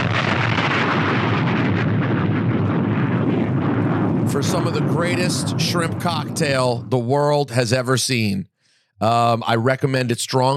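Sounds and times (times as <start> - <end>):
bomb drop sound effect rumbling roar: 0.0 - 7.8
speech: 4.4 - 10.5.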